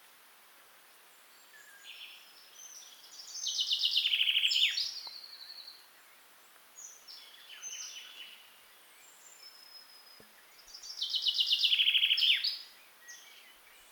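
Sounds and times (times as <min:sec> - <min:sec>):
steady hiss: 0:00.0 - 0:13.9
Common chaffinch Fringilla coelebs song: 0:01.3 - 0:06.2, 0:06.8 - 0:13.9.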